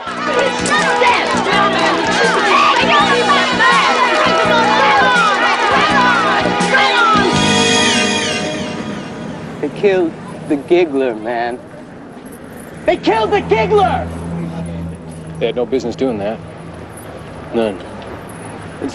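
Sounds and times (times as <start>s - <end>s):
high yells: 0.0s - 9.0s, 12.9s - 14.8s
residents cheering and shouting as gang members flee: 0.0s - 9.4s, 12.9s - 14.4s
speech: 9.6s - 11.7s, 12.8s - 14.2s, 15.4s - 16.5s, 17.5s - 17.9s.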